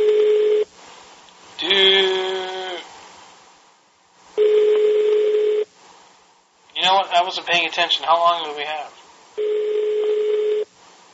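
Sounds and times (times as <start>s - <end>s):
electronic ringback tone over a phone line: 0.0s - 0.7s, 4.4s - 5.7s, 9.4s - 10.7s
faint phone line hiss: 0.0s - 11.1s
speech: 7.1s - 9.6s.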